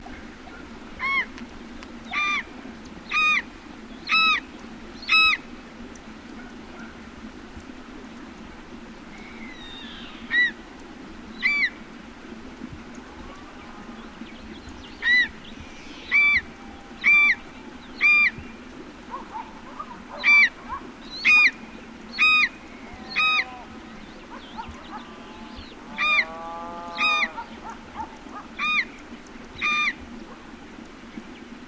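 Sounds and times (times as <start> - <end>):
black-chested buzzard-eagle Geranoaetus melanoleucus: 0.5 - 1.3, 2.1 - 2.5, 3.1 - 5.4, 11.4 - 11.8, 15.0 - 15.4, 16.0 - 18.5, 19.1 - 29.0, 29.6 - 30.4.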